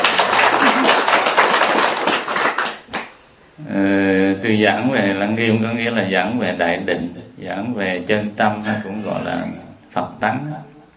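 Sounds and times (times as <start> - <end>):
room full of people applauding: 0.0 - 3.1
speech: 3.8 - 10.7.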